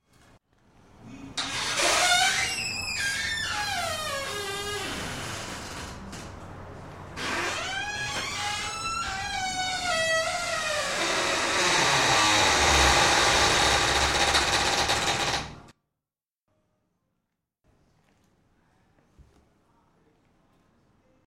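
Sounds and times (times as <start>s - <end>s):
door creaking: 1.4s - 15.7s.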